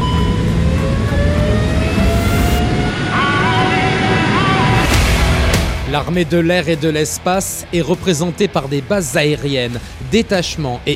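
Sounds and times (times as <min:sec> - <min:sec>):
aircraft engines roaring during takeoff: 0:00.0 - 0:08.6
speech: 0:06.0 - 0:10.9.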